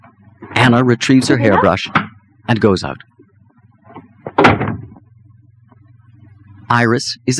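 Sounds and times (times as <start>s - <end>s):
low steady hum: 0.0s - 7.3s
speech: 0.7s - 3.1s, 6.7s - 7.3s
bedroom door swinging open: 4.0s - 5.0s.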